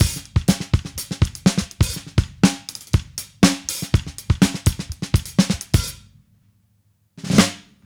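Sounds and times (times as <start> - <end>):
70s analog funk drum fill: 0.0 - 6.0.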